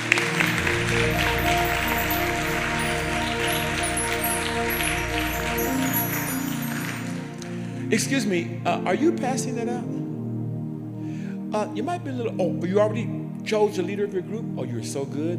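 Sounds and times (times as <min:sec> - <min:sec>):
audience clapping: 0:00.0 - 0:07.6
sustained organ-like music: 0:00.0 - 0:12.2
speech: 0:07.9 - 0:10.0, 0:11.5 - 0:15.3.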